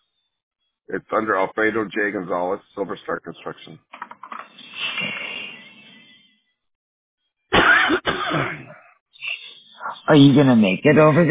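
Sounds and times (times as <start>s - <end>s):
speech: 0.9s - 4.0s, 10.1s - 11.2s
person coughing and clearing throat from a throat tickle: 7.5s - 8.9s.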